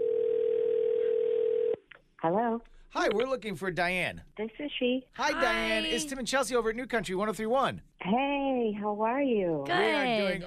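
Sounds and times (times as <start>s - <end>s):
telephone dial tone while placing a call: 0.0s - 1.8s
speech: 2.2s - 10.4s.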